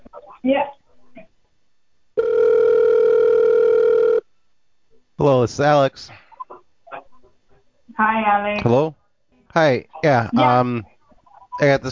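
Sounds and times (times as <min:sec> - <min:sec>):
speech: 0:00.4 - 0:00.8, 0:05.2 - 0:06.2, 0:08.0 - 0:10.9, 0:11.6 - 0:11.9
telephone ring tone while a call is on hold: 0:02.2 - 0:04.2.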